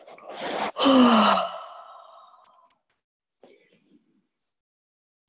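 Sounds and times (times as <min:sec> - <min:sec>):
soft breathy exhales and sighs: 0:00.3 - 0:02.7
big drawn-out yawn with downward sliding pitch: 0:00.8 - 0:02.6.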